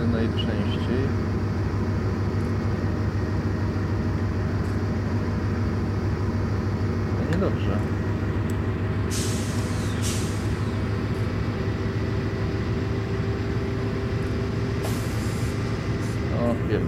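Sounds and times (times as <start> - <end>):
heavy vehicle idling: 0.0 - 16.8
heavy vehicle air brake releasing hisses: 9.1 - 10.8, 14.8 - 16.2.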